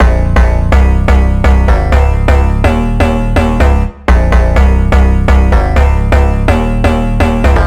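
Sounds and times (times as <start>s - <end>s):
big future house EDM bass loop in A sharp: 0.0s - 7.6s.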